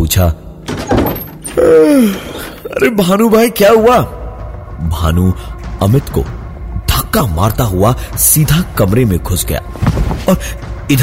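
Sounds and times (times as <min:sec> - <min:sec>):
speech: 0:00.1 - 0:01.0, 0:01.6 - 0:04.2, 0:04.8 - 0:06.4, 0:07.1 - 0:11.0
door latch thunk: 0:00.6 - 0:01.6
door hinges creaking: 0:00.6 - 0:01.8.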